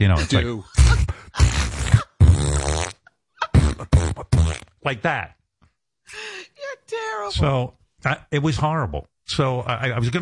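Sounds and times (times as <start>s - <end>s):
speech: 0.0s - 1.0s, 4.8s - 5.4s, 6.9s - 10.1s
laughter: 0.0s - 1.6s
person vocally imitating a loud fart: 0.8s - 4.8s.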